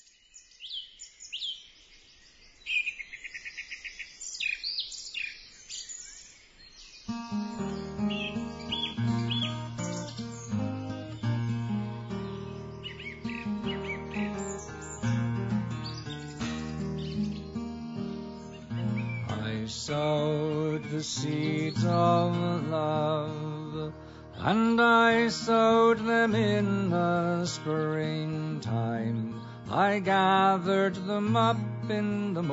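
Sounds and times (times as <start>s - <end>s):
birds chirping and twittering: 0.0s - 32.5s
gentle instrumental folk tune: 7.1s - 32.5s
speech: 19.9s - 23.4s, 24.4s - 32.5s.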